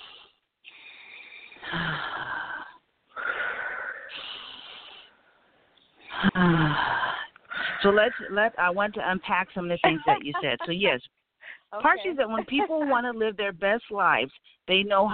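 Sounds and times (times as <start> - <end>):
deep breathing in and out during a guided relaxation exercise: 0.0 - 8.2
speech: 7.8 - 15.1
laughter: 9.8 - 11.0, 12.0 - 13.0.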